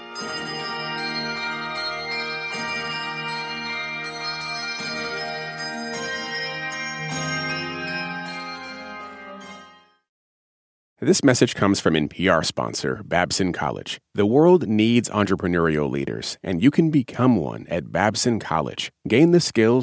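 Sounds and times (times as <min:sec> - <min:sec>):
handbell choir playing a ringing piece: 0:00.0 - 0:10.0
speech: 0:11.0 - 0:19.8.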